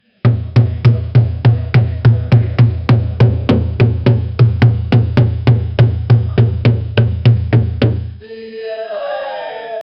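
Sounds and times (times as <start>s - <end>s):
demonic drum beating: 0.2s - 8.2s.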